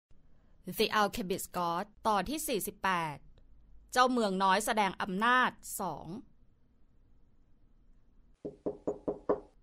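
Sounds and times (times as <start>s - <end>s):
speech: 0.7s - 3.3s, 3.9s - 6.3s
firm knocks on a wooden door: 8.4s - 9.6s.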